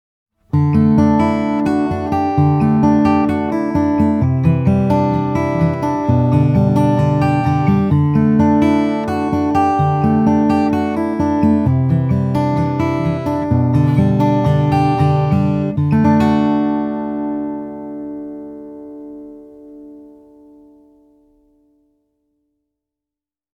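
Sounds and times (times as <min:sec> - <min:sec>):
fingerstyle acoustic guitar: 0:00.4 - 0:21.9.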